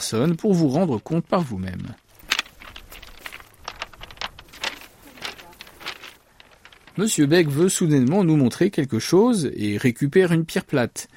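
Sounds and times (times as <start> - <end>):
speech: 0.0 - 2.0, 7.0 - 11.1
faint rustle: 1.6 - 8.1
footsteps crunching across a beach: 2.2 - 7.1.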